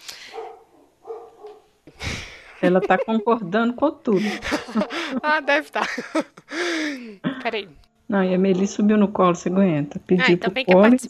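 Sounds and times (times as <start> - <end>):
dog barking in short sharp yelps: 0.2 - 1.7, 4.6 - 5.6
laughter: 2.0 - 7.5
speech: 2.6 - 6.5, 7.1 - 11.0.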